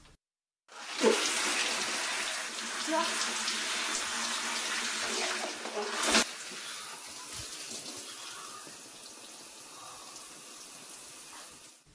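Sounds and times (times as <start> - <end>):
shower water running: 0.7 - 11.8.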